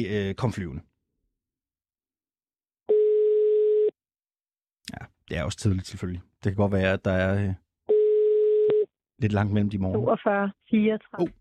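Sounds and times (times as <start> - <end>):
speech: 0.0 - 0.9, 4.9 - 7.6, 9.2 - 11.3
telephone ringing tone: 2.9 - 4.0, 7.9 - 8.9.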